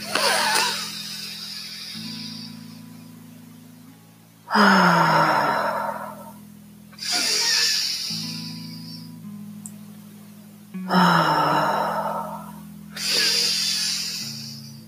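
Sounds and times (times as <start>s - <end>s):
low steady hum: 0.0s - 14.8s
deep breathing in and out during a guided chakra meditation: 0.1s - 2.9s, 4.5s - 6.4s, 7.0s - 9.1s, 10.9s - 14.8s.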